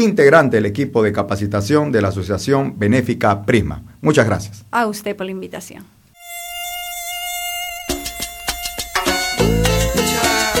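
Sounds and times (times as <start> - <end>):
speech: 0.0 - 6.0
mosquito whining: 6.1 - 10.5
bright musical stabs: 7.1 - 10.5
sharp percussive hits: 7.9 - 10.5.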